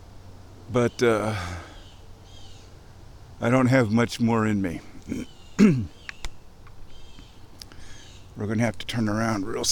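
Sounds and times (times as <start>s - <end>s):
outdoor noise: 0.0s - 9.7s
speech: 0.7s - 1.7s, 3.4s - 6.0s, 8.4s - 9.7s
bird alarm call: 1.6s - 2.8s, 5.1s - 8.4s
faint sharp bird chips: 5.2s - 8.3s.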